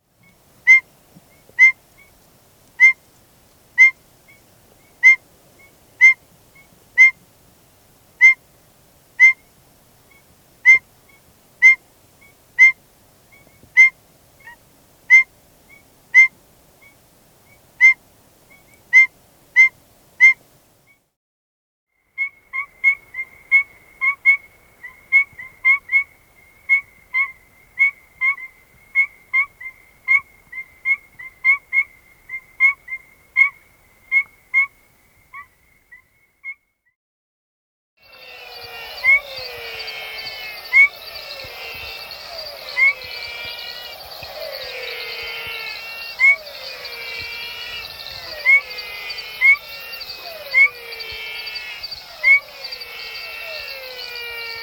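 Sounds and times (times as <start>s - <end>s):
Aplastodiscus perviridis call: 0.2s - 0.9s, 1.5s - 2.1s, 2.8s - 3.0s, 3.8s - 4.0s, 4.9s - 7.2s, 8.2s - 8.5s, 9.2s - 9.5s, 10.1s - 11.9s, 12.6s - 16.4s, 17.8s - 18.0s, 18.6s - 20.5s, 22.0s - 36.6s, 38.0s - 54.6s.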